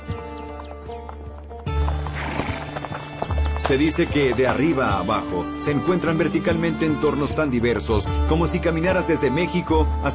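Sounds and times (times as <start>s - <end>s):
mules loaded with supplies walking on a canyon trail: 0.0s - 7.4s
speech: 3.7s - 10.1s.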